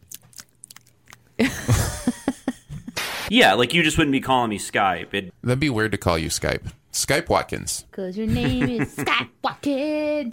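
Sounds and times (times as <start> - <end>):
wet chewing of a banana: 0.0 - 1.3
laughter: 1.4 - 3.0, 8.3 - 9.3
speech: 3.3 - 10.3.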